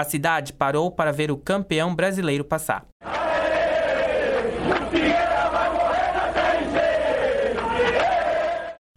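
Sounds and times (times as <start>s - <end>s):
speech: 0.0s - 2.9s
large crowd of football fans chanting a victory cry: 3.0s - 8.8s.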